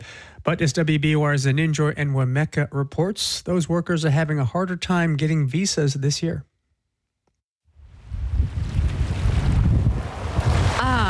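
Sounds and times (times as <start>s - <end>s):
speech: 0.4s - 6.5s
wind buffeting the microphone: 7.9s - 11.0s
ocean surf roaring on the shore: 8.5s - 11.0s.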